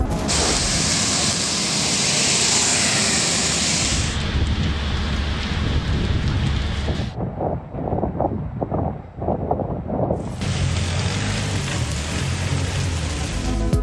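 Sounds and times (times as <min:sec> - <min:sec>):
heavy rain pouring down: 0:00.1 - 0:07.1, 0:10.2 - 0:13.7
thunder rolling under the downpour: 0:00.1 - 0:13.5.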